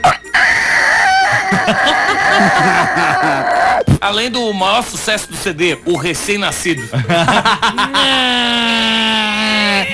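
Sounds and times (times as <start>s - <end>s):
rooster crowing: 0.3s - 3.8s
laughter: 1.2s - 4.0s, 6.8s - 9.9s
speech: 1.5s - 9.9s.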